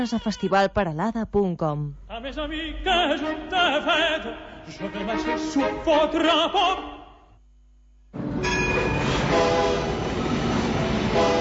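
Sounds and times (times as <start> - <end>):
speech: 0.0 - 7.0
rack railway train to the Vall de Núria rumbling: 8.4 - 11.3.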